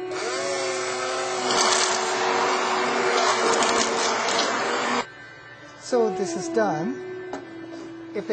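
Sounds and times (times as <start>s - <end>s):
blender pureeing cooked lentils: 0.0s - 5.1s
speech: 5.9s - 7.1s.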